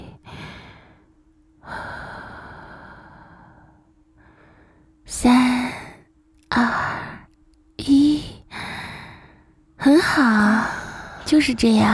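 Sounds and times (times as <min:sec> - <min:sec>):
person breathing slowly during a guided deep-breathing relaxation exercise: 0:00.0 - 0:05.0, 0:07.9 - 0:11.3
faint steady low hum: 0:00.0 - 0:11.9
speech: 0:05.2 - 0:05.5, 0:09.9 - 0:11.9.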